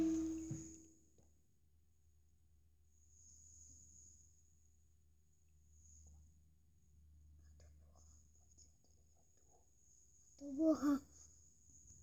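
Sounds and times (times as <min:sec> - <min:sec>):
voice: 0:10.4 - 0:11.0.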